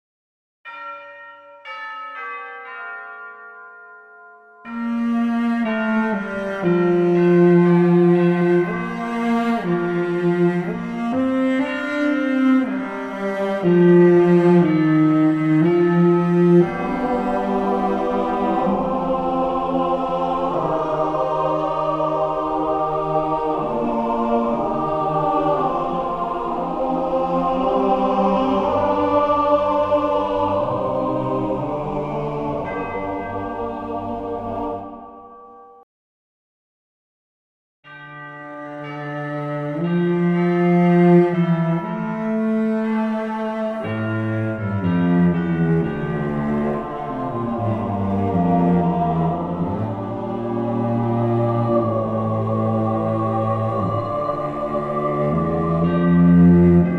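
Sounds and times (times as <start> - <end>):
bells: 0.7 - 35.8, 37.9 - 56.9
cello: 4.7 - 35.0, 38.0 - 56.9
sacred monastery choir singing: 4.8 - 35.6, 38.5 - 56.9.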